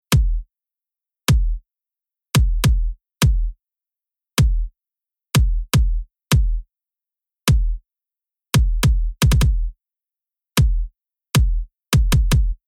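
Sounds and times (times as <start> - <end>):
future bass rhythm bass kick drum: 0.1 - 0.5, 1.3 - 1.6, 2.4 - 3.6, 4.4 - 4.7, 5.4 - 6.6, 7.5 - 7.8, 8.6 - 9.7, 10.6 - 12.6.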